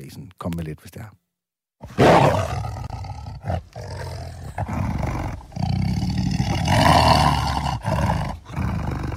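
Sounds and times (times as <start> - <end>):
speech: 0.1 - 1.2, 1.8 - 2.8, 3.4 - 5.0
tiger roaring: 1.8 - 9.1.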